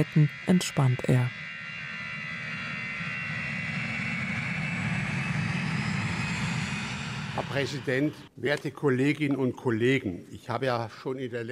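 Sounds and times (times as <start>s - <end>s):
speech: 0.0s - 1.5s, 7.5s - 11.4s
airplane engine roar in flight: 0.0s - 8.3s.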